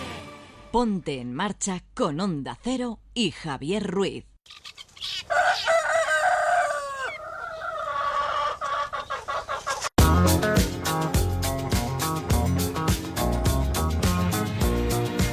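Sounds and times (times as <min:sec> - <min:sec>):
speech: 0:00.7 - 0:05.7
rooster crowing and clucking: 0:05.2 - 0:09.1
bright rhythmic music jingle: 0:10.0 - 0:15.2.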